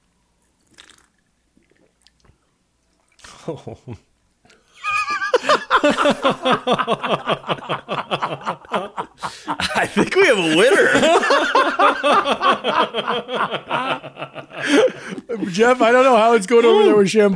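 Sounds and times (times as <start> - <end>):
slurping a fizzy soda mixed drink: 0.4 - 3.3
laughter: 3.2 - 4.1, 4.8 - 17.3
speech: 3.4 - 4.1, 6.0 - 17.3.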